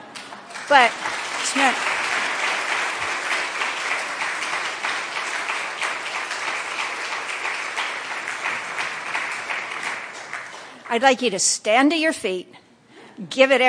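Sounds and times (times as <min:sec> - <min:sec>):
crowd applauding: 0:00.5 - 0:11.0
speech: 0:00.7 - 0:01.9, 0:10.9 - 0:12.6, 0:13.2 - 0:13.6.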